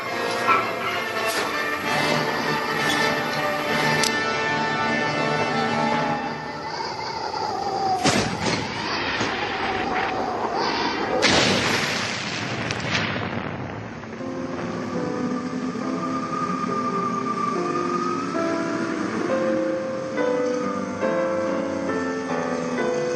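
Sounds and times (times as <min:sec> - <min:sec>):
ringing drone of shifting tones: 0:00.0 - 0:08.0, 0:14.2 - 0:23.1
huge explosion: 0:07.8 - 0:15.3.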